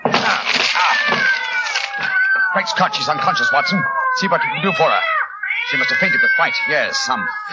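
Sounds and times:
wood cracking as a locked door is forced: 0.0s - 3.4s
about half a dozen cats meowing and yowling in a locked dressing room: 0.0s - 7.5s
speech: 2.6s - 7.5s.

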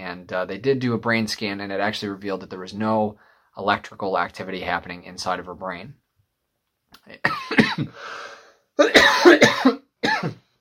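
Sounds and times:
speech: 0.2s - 6.0s, 7.0s - 9.8s
person coughing: 7.2s - 8.1s, 8.8s - 10.5s.

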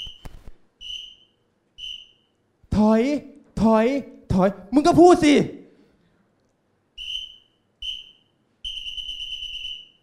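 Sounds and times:
speech: 2.8s - 5.6s
person imitating a parking attendant's whistle: 7.0s - 10.0s.

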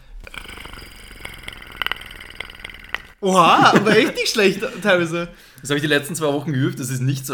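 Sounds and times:
person imitating a movie creature's rattling growl: 0.2s - 3.7s
laughter: 3.2s - 5.3s
speech: 3.2s - 7.3s.

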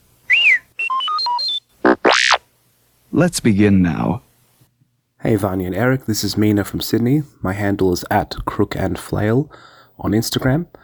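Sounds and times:
electronic droid chirps and beeps: 0.3s - 2.4s
speech: 3.2s - 4.3s, 5.2s - 10.8s.

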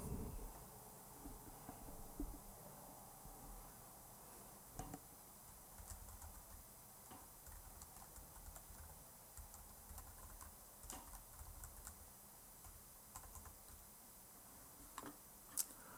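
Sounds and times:
low hum: 0.0s - 15.9s
typing on a computer keyboard: 4.8s - 13.9s.

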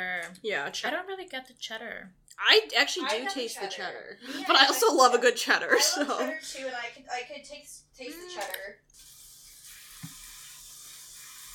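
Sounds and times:
speech: 0.0s - 9.1s
water pouring from a faucet: 9.0s - 11.5s.

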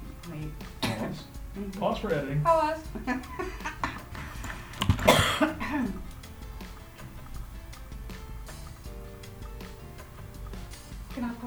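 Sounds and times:
low steady background: 0.0s - 11.4s
speech: 0.3s - 3.8s, 5.7s - 6.1s
person coughing from allergies: 0.8s - 1.2s, 4.9s - 6.0s
laughter: 2.9s - 6.0s.

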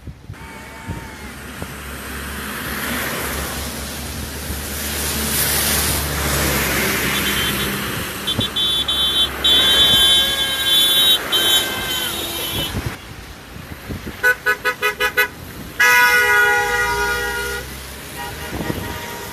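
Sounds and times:
roadway noise in Finstown Orkney: 0.0s - 19.3s
car horn honking: 0.3s - 1.3s, 6.9s - 13.1s, 14.2s - 19.3s.

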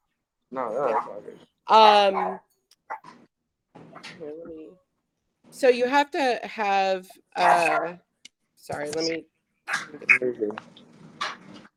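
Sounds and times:
speech: 0.5s - 3.2s, 4.0s - 4.8s, 5.4s - 10.8s
dog barking with whiny yelping edge: 0.8s - 1.2s, 2.1s - 3.2s, 9.7s - 10.0s.

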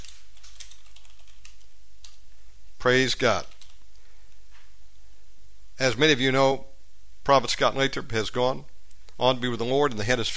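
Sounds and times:
computer keyboard typing a post: 0.0s - 2.2s, 3.4s - 3.8s
low steady hum: 0.0s - 10.3s
speech: 2.8s - 3.5s, 5.8s - 10.3s.

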